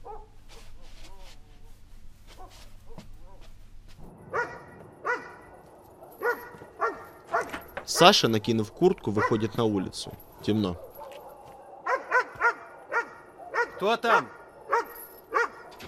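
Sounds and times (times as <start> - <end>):
dog barking outside at night: 0.0 - 0.8, 4.2 - 15.8
speech: 8.0 - 10.9, 13.8 - 14.4.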